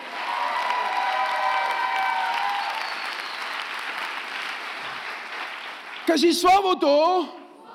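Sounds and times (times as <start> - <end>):
cheers: 0.0 - 4.2
large crowd clapping: 0.0 - 6.4
whistles: 2.3 - 3.8
speech: 6.1 - 7.4.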